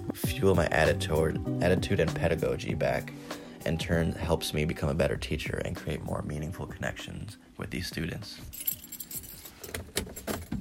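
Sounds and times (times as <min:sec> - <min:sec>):
speech: 0:00.4 - 0:08.8
keys jingling while getting into a car: 0:08.5 - 0:10.5.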